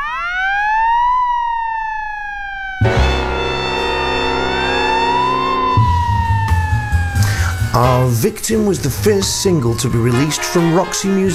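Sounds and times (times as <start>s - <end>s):
police siren wailing: 0.0s - 11.3s
heavy low engine rumble of passing vehicle: 2.8s - 10.2s
speech: 7.8s - 11.3s.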